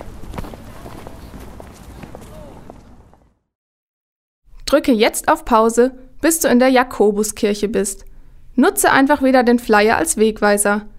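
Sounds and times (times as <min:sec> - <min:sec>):
footsteps of someone walking: 0:00.0 - 0:03.3
scuffing ground noise: 0:00.0 - 0:03.3
speech: 0:04.7 - 0:10.9.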